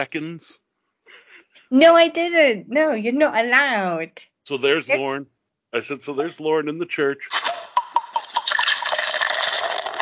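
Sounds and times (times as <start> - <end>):
speech: 0.0 - 7.4
wine gurgling while poured for church communion: 7.3 - 10.0
wine pouring in a steady stream for church communion: 7.3 - 10.0.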